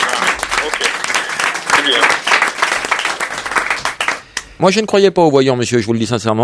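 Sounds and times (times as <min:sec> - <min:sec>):
studio audience applause: 0:00.0 - 0:04.3
speech: 0:04.6 - 0:06.4.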